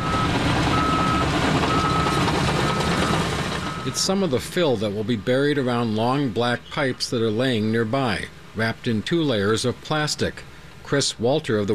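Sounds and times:
high reversing beep: 0:00.0 - 0:04.4
bulldozer moving gravel at a construction site outside a wastewater treatment plant: 0:00.0 - 0:11.7
speech: 0:03.9 - 0:11.7.

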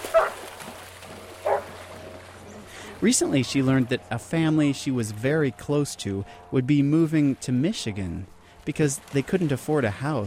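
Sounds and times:
low steady hum: 0:00.0 - 0:10.2
faint dog barks at an outdoor dog park on a lake shore: 0:00.1 - 0:00.4, 0:01.4 - 0:01.7
speech: 0:03.0 - 0:10.2.

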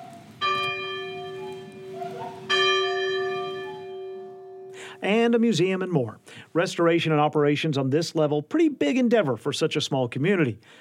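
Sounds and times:
church bell tolling: 0:00.0 - 0:05.0
speech: 0:05.0 - 0:10.8.

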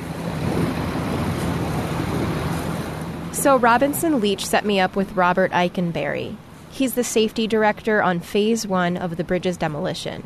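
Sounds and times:
boat motor droning: 0:00.0 - 0:10.2
rushing water: 0:00.0 - 0:10.2
wind: 0:00.0 - 0:10.2
speech: 0:03.4 - 0:10.2.

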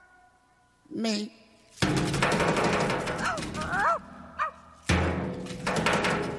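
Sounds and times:
speech: 0:01.0 - 0:02.6
loud clattering noisy backdrop in a 1970s underground song: 0:01.8 - 0:03.8, 0:04.9 - 0:06.3
man imitating dog barking in a song: 0:03.2 - 0:04.6.

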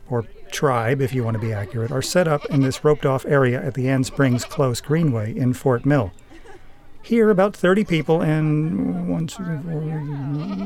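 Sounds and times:
speech: 0:00.1 - 0:06.2, 0:07.0 - 0:10.6
young goats bleating at an outdoor goat yoga session on a greenway: 0:02.2 - 0:02.8, 0:04.0 - 0:04.8, 0:09.9 - 0:10.6.

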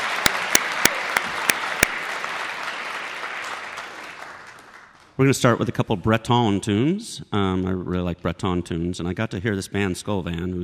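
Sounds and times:
audience applauding a folk band: 0:00.0 - 0:05.3
speech: 0:05.2 - 0:10.6.

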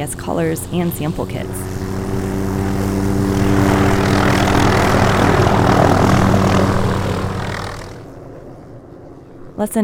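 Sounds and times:
speech: 0:00.0 - 0:01.7, 0:09.6 - 0:09.8
small propeller plane flying overhead: 0:00.0 - 0:09.8.

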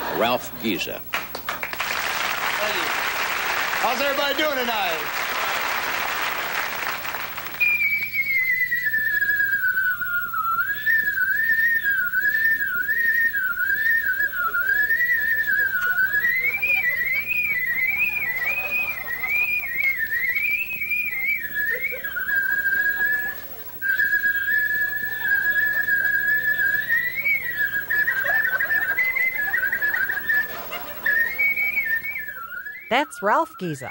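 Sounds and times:
speech: 0:00.2 - 0:01.1, 0:03.8 - 0:05.2, 0:33.2 - 0:33.8
short burst of applause: 0:00.7 - 0:08.1
man whistling a medley: 0:06.5 - 0:33.8
laughter: 0:11.9 - 0:32.6.

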